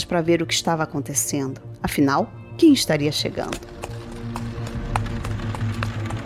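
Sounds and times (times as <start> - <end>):
speech: 0.0 - 4.0
hoofbeats of horses pulling a cart on a dusty road: 3.0 - 6.2.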